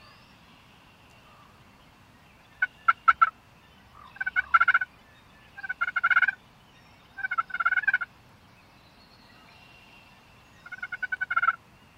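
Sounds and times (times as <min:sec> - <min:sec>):
wild turkey gobbling: 0:02.6 - 0:03.3, 0:04.0 - 0:04.9, 0:05.6 - 0:06.4, 0:07.2 - 0:08.1, 0:10.6 - 0:11.6.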